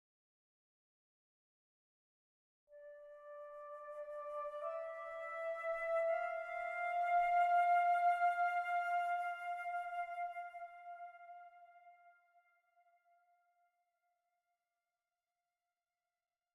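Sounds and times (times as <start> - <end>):
flute: 2.7 - 13.2.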